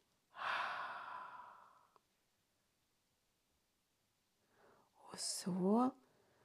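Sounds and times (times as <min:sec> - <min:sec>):
slow exhale through the mouth: 0:00.4 - 0:01.9
soft intake of breath: 0:00.4 - 0:02.0
speech: 0:05.2 - 0:06.0.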